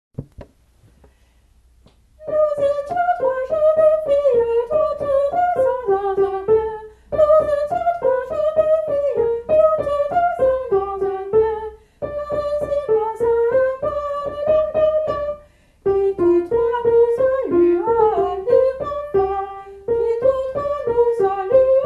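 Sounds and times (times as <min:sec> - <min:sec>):
young girl singing tenor: 0:02.2 - 0:21.8.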